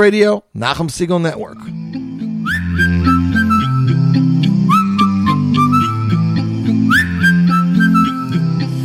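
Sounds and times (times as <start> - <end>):
speech: 0.0 - 1.8, 2.8 - 3.2
loud bouncy music track with steady beat: 1.6 - 8.8
whistle tooting: 2.4 - 8.8.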